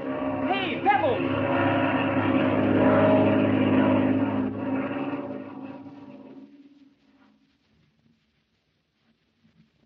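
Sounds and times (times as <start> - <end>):
propeller airplane flying overhead: 0.0 - 7.5.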